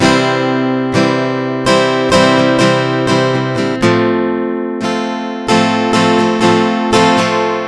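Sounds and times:
acoustic guitar in C major: 0.0s - 7.6s.

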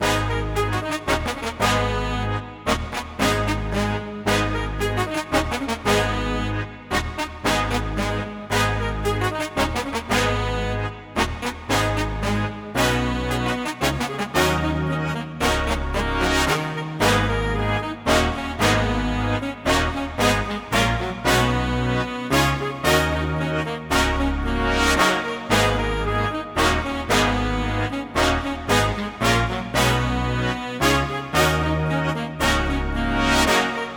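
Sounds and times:
113 BPM G sharp minor brass melody: 0.0s - 33.9s.

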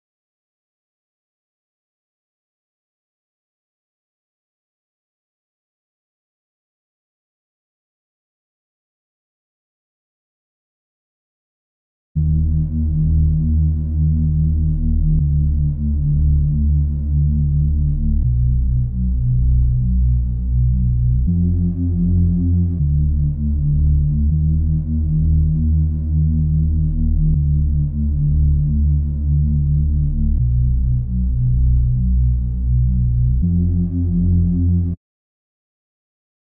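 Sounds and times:
hip hop bass melody loop: 12.2s - 35.0s.

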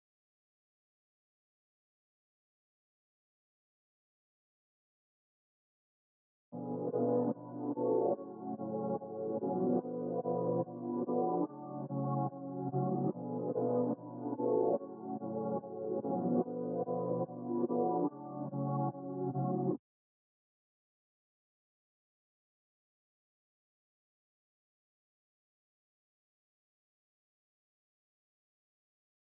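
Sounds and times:
filtered keys melody loop in F sharp minor at 145 bpm: 6.6s - 19.8s.

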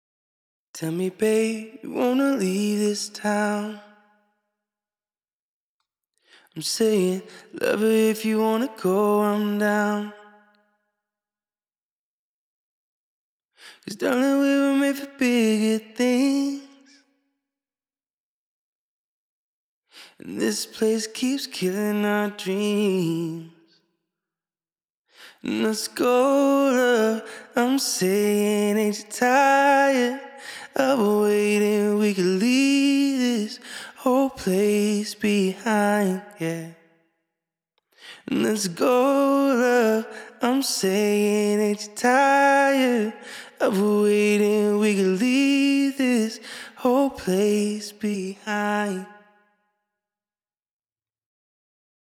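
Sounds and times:
person singing a cappella in F sharp minor: 0.8s - 4.1s, 6.6s - 10.5s, 13.8s - 17.0s, 20.1s - 23.8s, 25.3s - 36.8s, 38.1s - 49.4s.

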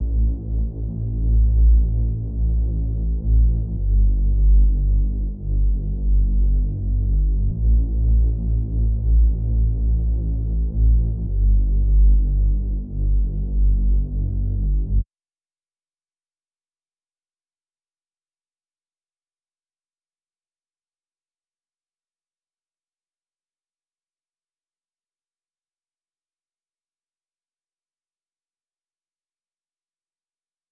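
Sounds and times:
128 BPM D minor bass melody loop: 0.0s - 15.0s.

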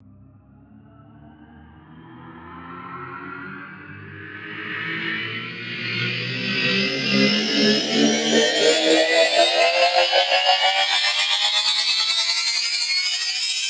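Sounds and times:
riddim riser one-shot sound effect: 4.0s - 13.6s.

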